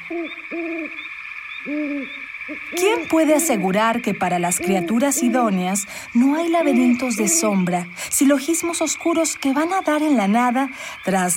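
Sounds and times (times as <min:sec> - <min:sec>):
owl hooting: 0:00.0 - 0:08.0
high-pitched insect-like drone: 0:00.0 - 0:11.3
speech: 0:00.1 - 0:11.3.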